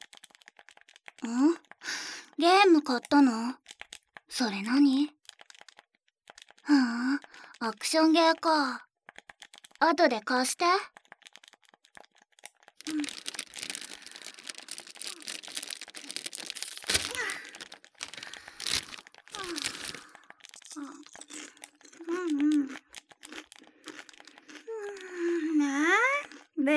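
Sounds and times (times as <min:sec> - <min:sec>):
potato-chip bag crinkling: 0:00.0 - 0:02.0, 0:05.2 - 0:07.6, 0:09.1 - 0:09.8, 0:10.9 - 0:25.3
speech: 0:01.2 - 0:01.6, 0:02.4 - 0:03.6, 0:04.3 - 0:05.2, 0:06.7 - 0:08.9, 0:09.8 - 0:11.0, 0:12.9 - 0:13.2
crunchy chewing of potato chips: 0:05.2 - 0:07.6, 0:09.1 - 0:09.8, 0:10.9 - 0:25.4, 0:26.2 - 0:26.6.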